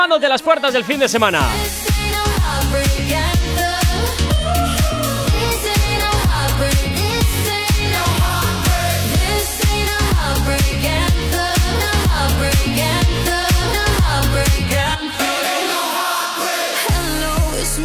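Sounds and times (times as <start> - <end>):
speech: 0.0 - 2.1
upbeat pop dance song playing on radio: 0.0 - 17.8.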